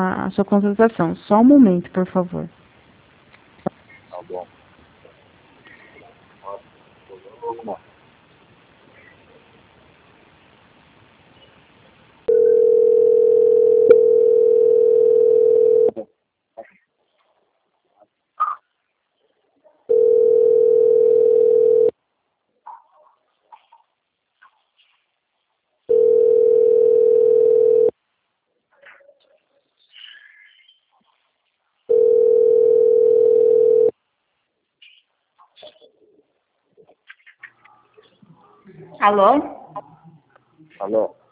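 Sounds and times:
speech: 0.0s - 2.6s, 7.5s - 7.9s, 39.1s - 39.6s, 40.8s - 41.2s
faint scattered noises: 0.0s - 41.3s
telephone line tone while a call is transferred: 12.3s - 16.0s, 19.9s - 21.9s, 25.9s - 27.9s, 31.9s - 33.9s.

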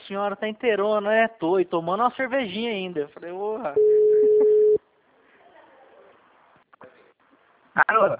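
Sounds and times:
speech: 0.1s - 4.2s, 7.8s - 8.1s
telephone busy tone beep after a dropped call: 3.8s - 4.8s.

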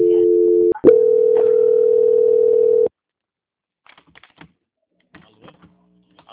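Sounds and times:
telephone call-transfer tone: 0.0s - 2.9s.

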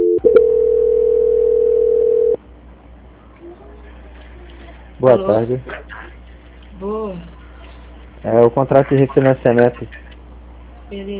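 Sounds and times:
phone line click: 0.0s - 2.4s
telephone call-transfer tone on a phone line: 0.0s - 2.4s
speech: 5.0s - 5.9s, 6.8s - 7.4s, 8.2s - 10.0s, 10.9s - 11.1s.

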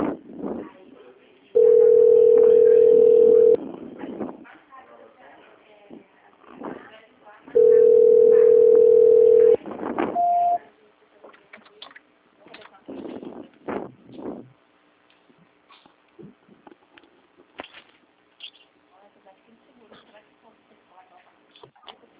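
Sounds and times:
people talking: 0.0s - 13.6s, 18.9s - 22.1s
telephone dial tone while placing a call: 1.6s - 3.6s, 7.6s - 9.6s
brief higher telephone beep: 10.2s - 10.6s.

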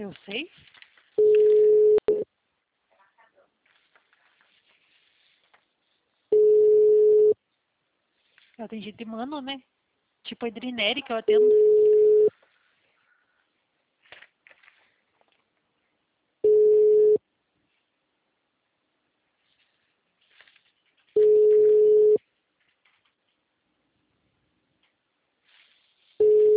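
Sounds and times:
speech: 0.0s - 1.3s, 8.6s - 11.8s
ringing tone on an outgoing telephone call: 1.2s - 2.2s, 6.3s - 7.4s, 11.4s - 12.3s, 16.4s - 17.2s, 21.2s - 22.2s, 26.2s - 26.5s.

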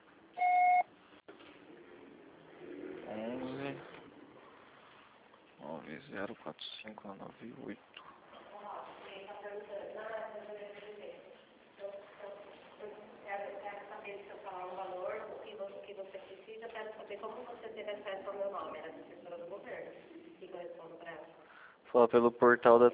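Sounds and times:
voicemail recording electronic beep: 0.4s - 0.9s
speech: 6.1s - 8.1s, 16.6s - 22.9s.

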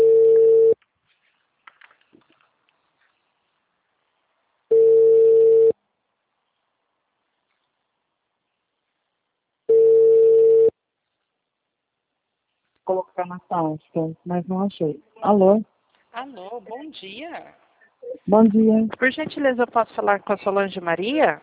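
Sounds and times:
mobile phone ringback tone while a call connects: 0.0s - 0.8s, 4.7s - 5.8s, 9.7s - 10.7s
speech: 13.2s - 21.4s.

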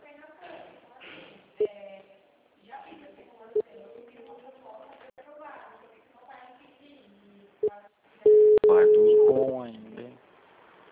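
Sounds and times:
people talking: 0.0s - 10.2s
short phone call tone blip: 8.3s - 9.5s.

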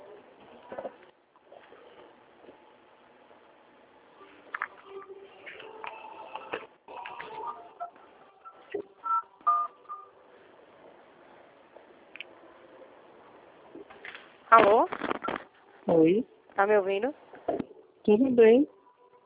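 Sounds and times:
telephone keypad dialing tones while a call is transferred: 8.5s - 10.1s
speech: 14.6s - 15.0s, 16.0s - 17.2s, 18.1s - 18.8s.

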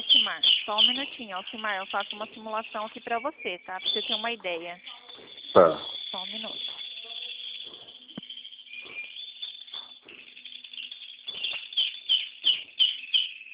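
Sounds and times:
dense chorus of many small birds chirping: 0.0s - 13.5s
speech: 0.7s - 6.7s.

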